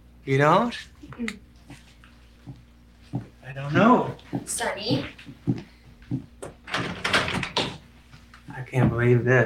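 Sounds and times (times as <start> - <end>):
speech: 0.2 - 1.5, 3.5 - 6.3, 8.6 - 9.4
dull knocks on a bathroom door: 4.4 - 7.8
bathroom door handle rattling as the door is shaken: 6.4 - 7.8.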